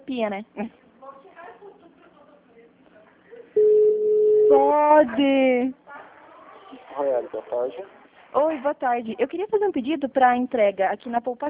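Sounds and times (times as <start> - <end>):
speech: 0.1 - 0.8, 4.5 - 5.8, 6.9 - 11.4
phone line tone on a VoIP call: 3.6 - 4.8.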